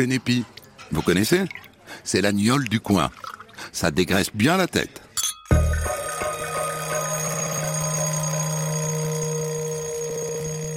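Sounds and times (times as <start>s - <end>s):
speech: 0.0s - 5.0s
alarm clock metallic bell ringing: 5.8s - 10.7s.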